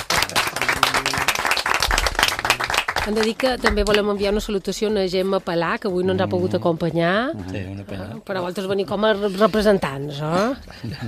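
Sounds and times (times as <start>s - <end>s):
applause from a small group welcoming two studio guests: 0.0s - 4.2s
speech: 3.1s - 11.0s.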